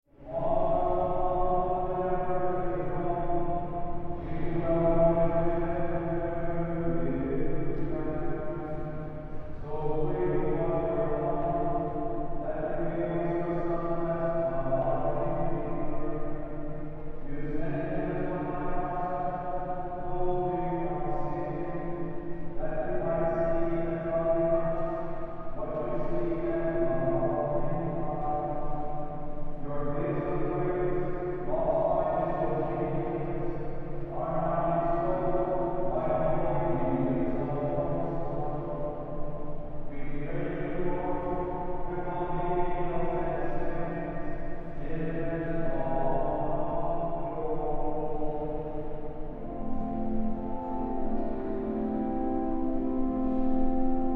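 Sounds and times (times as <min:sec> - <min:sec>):
church service without congregation: 0:00.0 - 0:54.1.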